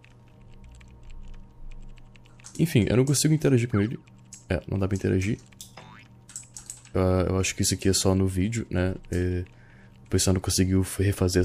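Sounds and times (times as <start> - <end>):
steady low hum: 0.0 - 11.4
typing numbers on a computer keyboard: 0.0 - 11.4
speech: 2.6 - 5.6, 6.9 - 11.4.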